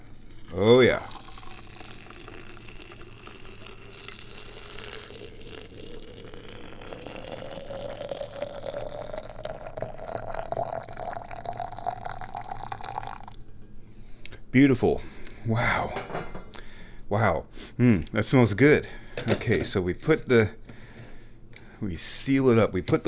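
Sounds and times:
hot water poured into a carafe: 0:00.0 - 0:13.5
speech: 0:00.5 - 0:01.1, 0:14.6 - 0:16.4, 0:17.1 - 0:20.6, 0:21.8 - 0:23.0.

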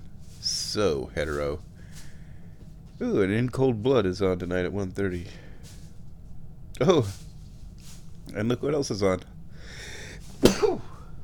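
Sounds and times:
speech: 0:00.7 - 0:01.7, 0:03.0 - 0:05.4, 0:06.8 - 0:07.2, 0:08.3 - 0:09.3
person sneezing: 0:10.4 - 0:11.1.

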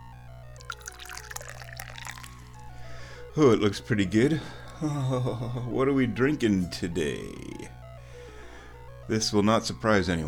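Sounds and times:
low steady hum: 0:00.0 - 0:10.2
Dahong Pao tea poured into a cup: 0:00.6 - 0:02.8
speech: 0:03.4 - 0:07.8, 0:09.1 - 0:10.2.

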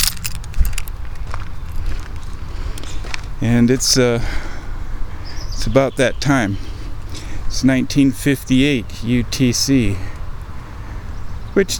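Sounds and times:
keys jingling taken out of a pocket while walking: 0:00.0 - 0:01.8
traffic rumble: 0:00.0 - 0:11.7
wind: 0:00.0 - 0:11.7
speech: 0:03.4 - 0:04.5, 0:05.6 - 0:06.7, 0:07.5 - 0:10.1, 0:11.6 - 0:11.7.

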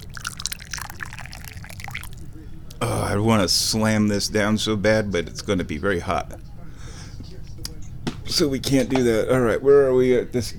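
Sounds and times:
pouring hot tea: 0:00.0 - 0:02.5
speech: 0:02.8 - 0:06.4, 0:08.4 - 0:10.5.

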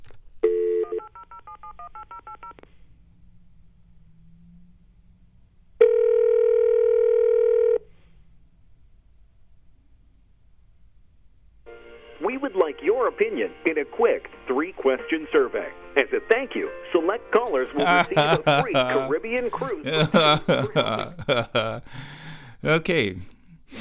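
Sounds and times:
long steady telephone tone: 0:00.4 - 0:02.6, 0:05.8 - 0:07.9
touch-tone beeps of a toll-free telephone number being dialed: 0:00.4 - 0:02.6
speech: 0:13.3 - 0:23.7
laughter: 0:17.4 - 0:23.2.

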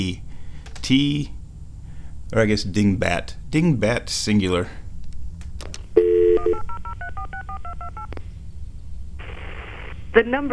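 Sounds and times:
speech: 0:00.0 - 0:01.4, 0:02.3 - 0:04.8, 0:10.1 - 0:10.5
loud steady telephone dial tone: 0:06.0 - 0:08.1.

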